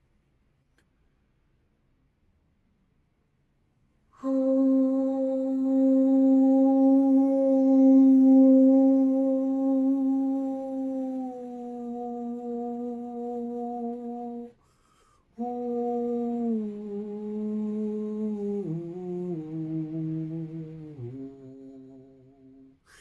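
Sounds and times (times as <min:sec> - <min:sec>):
single voice sustaining a soft ooh vowel melody: 0:04.2 - 0:14.6, 0:15.3 - 0:22.9.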